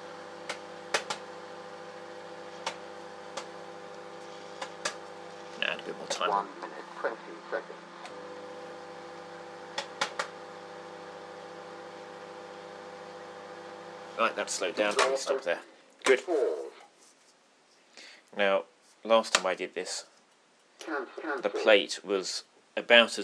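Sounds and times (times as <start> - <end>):
microwave oven running with electrical hum: 0.0 - 15.6
brief burst of sounds: 5.5 - 8.0, 20.8 - 21.8
speech: 6.1 - 8.2, 14.2 - 16.8, 18.3 - 20.1, 20.8 - 23.2.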